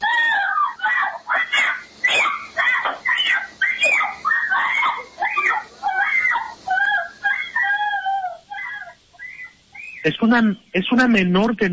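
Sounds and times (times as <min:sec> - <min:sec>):
9-year-old girl screaming for help: 0:00.0 - 0:09.6
speech: 0:10.1 - 0:11.7.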